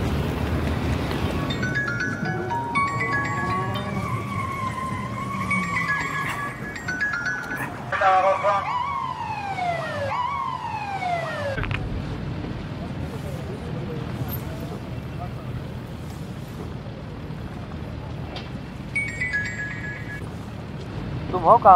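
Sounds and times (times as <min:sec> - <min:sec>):
dense traffic roar: 0:00.0 - 0:21.7
police siren of a ministerial convoy: 0:01.3 - 0:11.7
speech: 0:21.5 - 0:21.7.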